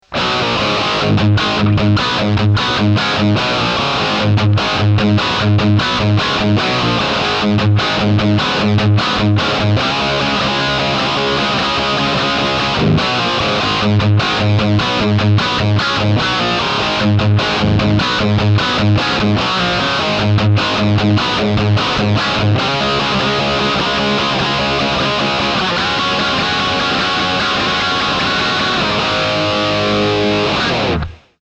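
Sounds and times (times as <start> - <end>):
rock music with multi-effects: 0.0 - 31.3.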